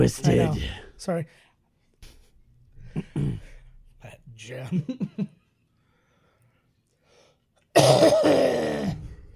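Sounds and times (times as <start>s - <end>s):
speech: 0.0s - 1.5s, 3.0s - 5.4s, 7.8s - 9.0s
sick person coughing: 3.0s - 3.6s, 7.7s - 8.9s.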